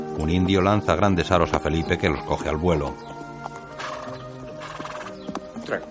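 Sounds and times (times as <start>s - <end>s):
speech: 0.2s - 3.1s, 5.7s - 5.9s
hooves of a horse being ridden in a courtyard clip-clopping: 1.3s - 5.9s.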